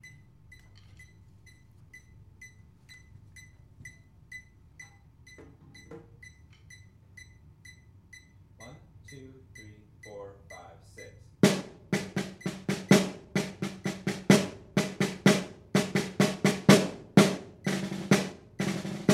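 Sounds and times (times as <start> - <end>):
medium slow snare drum cycle: 8.6 - 19.1.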